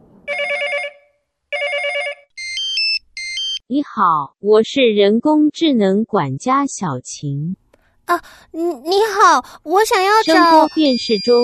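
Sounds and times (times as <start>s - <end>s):
electronic phone ringing tone during outgoing call: 0.3s - 3.6s, 10.1s - 11.4s
speech: 3.7s - 11.4s
higher-pitched sequence of beeping tones: 9.8s - 11.4s.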